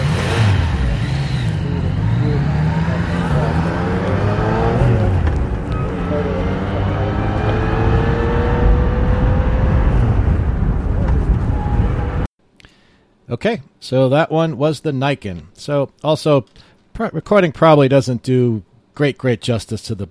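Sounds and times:
motorcycle engine with stock exhaust revving: 0:00.0 - 0:12.3
speech: 0:13.4 - 0:20.0.

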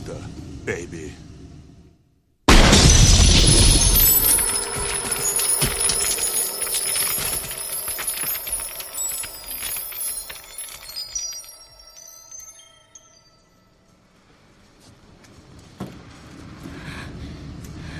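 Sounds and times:
speech: 0:00.7 - 0:01.3
frozen body shattering into pieces after gunshot: 0:02.5 - 0:12.6
fragments tinkling and scattering: 0:02.5 - 0:13.9.

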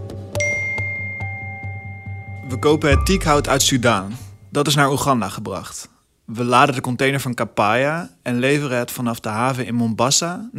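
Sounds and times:
speech: 0:02.5 - 0:10.5
message notification chime on a phone: 0:02.6 - 0:04.4.

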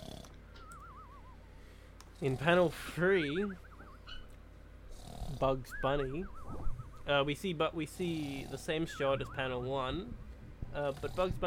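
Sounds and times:
cartoon-style snoring effect: 0:00.0 - 0:00.4, 0:02.2 - 0:03.3, 0:04.9 - 0:05.7, 0:08.0 - 0:09.0, 0:10.8 - 0:11.4
speech: 0:02.2 - 0:03.7, 0:05.4 - 0:11.4.

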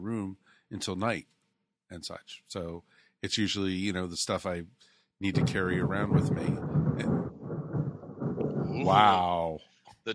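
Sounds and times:
speech: 0:00.2 - 0:07.3, 0:08.8 - 0:10.1
loud low stomach growl: 0:05.4 - 0:09.3.

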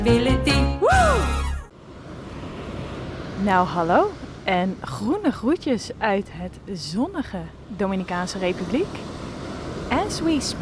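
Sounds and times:
speech: 0:00.0 - 0:00.6, 0:03.4 - 0:09.1, 0:10.1 - 0:10.6
swooping tone: 0:00.8 - 0:01.7
sea waves breaking on a white beach in the Dominican Republic: 0:01.2 - 0:10.6.

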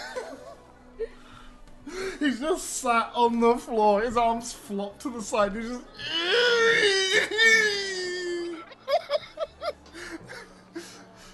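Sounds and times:
laughter: 0:00.0 - 0:01.1, 0:08.2 - 0:11.0
speech: 0:02.2 - 0:07.8
person vocally imitating sobbing: 0:06.0 - 0:08.7.

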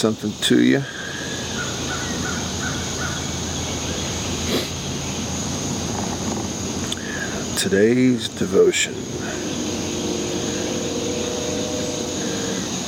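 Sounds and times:
speech: 0:00.0 - 0:01.0, 0:07.6 - 0:09.6
steady outdoor hum: 0:00.0 - 0:12.8
crow cawing in the early morning before sunrise: 0:00.9 - 0:03.2, 0:09.1 - 0:12.8
continuous high-pitched drone: 0:07.1 - 0:12.8.

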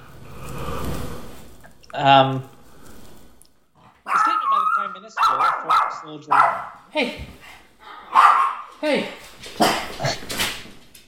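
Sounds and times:
speech: 0:02.0 - 0:02.5, 0:06.1 - 0:07.3, 0:08.8 - 0:09.7
dogs barking: 0:04.0 - 0:06.9, 0:07.8 - 0:08.8.

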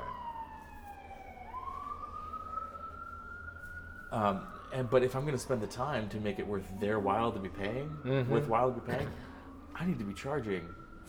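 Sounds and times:
emergency vehicle siren wailing outside: 0:00.0 - 0:11.0
low rumble of traffic: 0:00.0 - 0:11.0
speech: 0:04.1 - 0:11.0.

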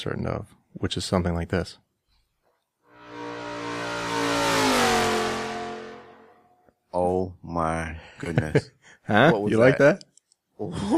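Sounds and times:
speech: 0:00.0 - 0:01.8, 0:06.9 - 0:10.9
car engine revving through loud exhaust pipes: 0:02.9 - 0:06.6
laughter: 0:08.2 - 0:08.8, 0:10.7 - 0:10.9.

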